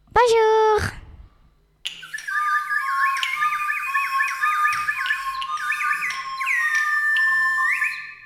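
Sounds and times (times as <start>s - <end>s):
hummingbird chirping and trilling in a forest: 1.9s - 8.2s.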